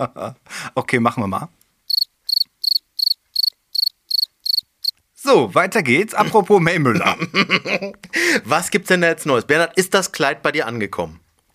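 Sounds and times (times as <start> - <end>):
speech: 0.0 - 1.6, 5.3 - 11.2
cricket chirping: 1.9 - 5.0
laughter: 6.2 - 8.2.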